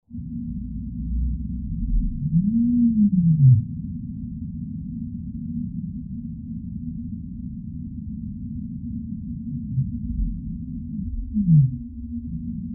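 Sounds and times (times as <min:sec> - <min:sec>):
steady deep rumble: 0:00.1 - 0:12.7
whale call moaning: 0:01.7 - 0:03.8, 0:09.5 - 0:12.7.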